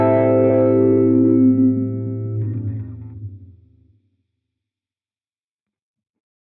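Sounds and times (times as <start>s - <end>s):
warping filter sound: 0.1s - 4.0s.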